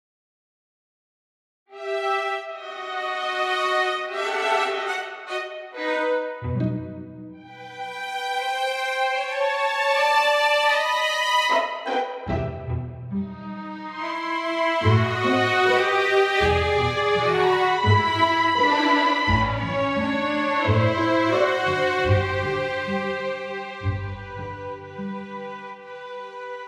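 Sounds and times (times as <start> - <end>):
solo strings: 1.8 - 26.6.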